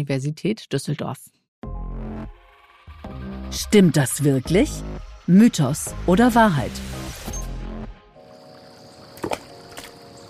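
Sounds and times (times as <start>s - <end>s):
speech: 0.0s - 1.4s, 3.5s - 7.0s
watery rushing noise: 9.1s - 10.2s
stone splashing into water when skipping fails: 9.2s - 10.0s.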